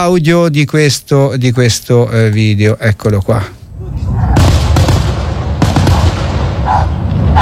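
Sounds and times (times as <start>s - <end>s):
speech: 0.0s - 3.6s
constant heavy rumble of ongoing fireworks explosions: 3.8s - 7.4s
fireworks bangs and cracks: 4.4s - 7.4s.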